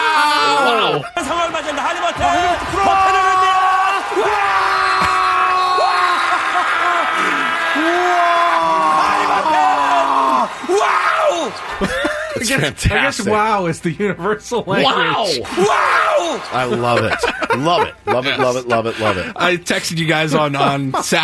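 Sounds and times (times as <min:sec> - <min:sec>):
large crowd screaming: 0:00.0 - 0:12.4, 0:14.8 - 0:17.1
laughter: 0:00.2 - 0:08.2, 0:08.8 - 0:13.6, 0:15.4 - 0:21.2
speech: 0:11.5 - 0:21.2.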